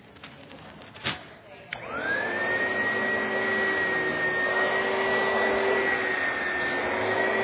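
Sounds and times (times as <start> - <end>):
vacuum cleaner running with a whining roar: 1.8 - 7.4.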